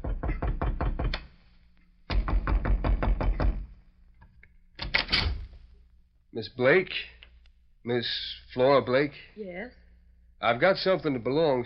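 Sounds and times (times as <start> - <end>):
knocking on a door: 0.0 - 1.2, 2.1 - 3.8
speech: 6.4 - 7.2, 7.8 - 9.8, 10.4 - 11.6.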